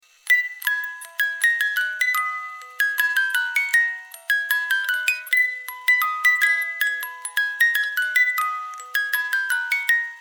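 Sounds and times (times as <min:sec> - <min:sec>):
musical jewelry box melody: 0:00.1 - 0:10.1.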